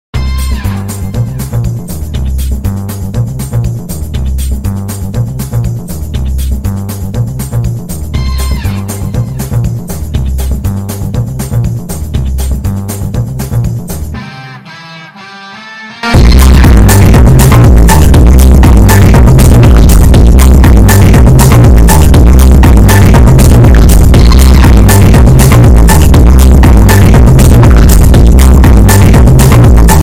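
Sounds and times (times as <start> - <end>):
bass boosted ringtone: 0.2 - 13.4, 16.1 - 30.0.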